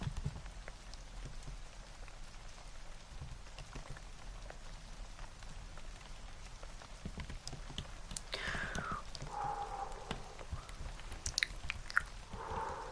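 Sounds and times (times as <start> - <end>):
rain pattering steadily on a surface: 0.0 - 12.9
brighter whispery mouth sounds: 8.3 - 12.9.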